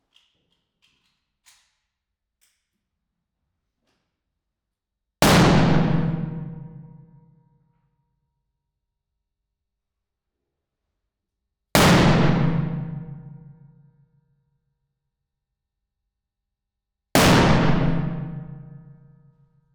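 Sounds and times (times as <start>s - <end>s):
Colt M1911 .45 ACP pistol shot in a stairwell: 5.2s - 7.8s, 11.8s - 14.1s, 17.1s - 19.7s.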